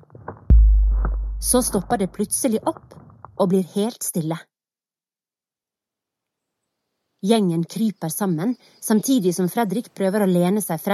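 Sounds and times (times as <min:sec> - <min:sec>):
massive booming footstep: 0:00.2 - 0:02.2
faint low rumbling: 0:00.5 - 0:02.3
speech: 0:01.4 - 0:04.5, 0:07.2 - 0:10.9.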